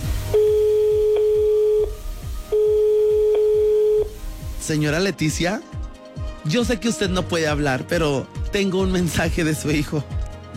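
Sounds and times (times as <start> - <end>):
repeating low thumping pattern: 0.0 - 10.5
telephone line tone as a call is placed: 0.3 - 4.2
speech: 4.7 - 5.8, 6.4 - 10.2.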